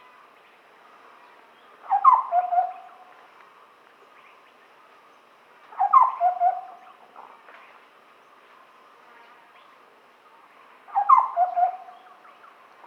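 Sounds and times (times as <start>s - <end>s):
large scimitar babbler calling with low hollow hooting whistles: 1.9s - 2.9s, 5.8s - 6.8s, 10.9s - 12.1s.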